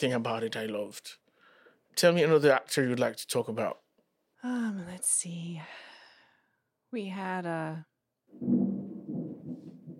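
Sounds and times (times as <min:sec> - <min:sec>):
speech: 0:00.0 - 0:01.2, 0:02.0 - 0:03.8, 0:04.4 - 0:05.9, 0:06.9 - 0:08.6
distant thunder rumbling: 0:08.3 - 0:09.9.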